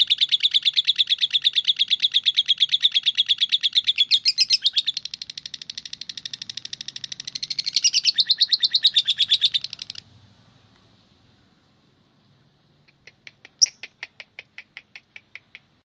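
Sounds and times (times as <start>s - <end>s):
Oriental magpie-robin singing high chirps: 0.0s - 10.0s, 13.6s - 13.9s.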